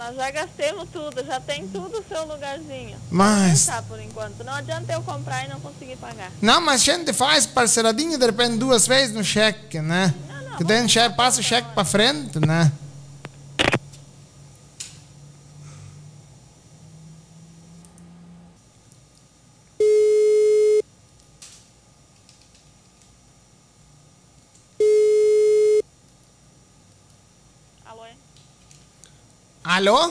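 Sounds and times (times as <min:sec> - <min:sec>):
speech: 0:00.1 - 0:12.8, 0:29.8 - 0:30.1
telephone busy tone after a dropped call: 0:19.8 - 0:20.8, 0:24.8 - 0:25.8.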